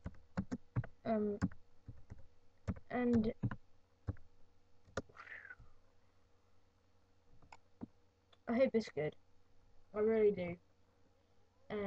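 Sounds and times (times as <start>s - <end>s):
typing on a computer keyboard: 0.0s - 4.2s
speech: 1.1s - 1.6s, 2.9s - 3.6s, 8.5s - 9.2s, 10.0s - 10.7s.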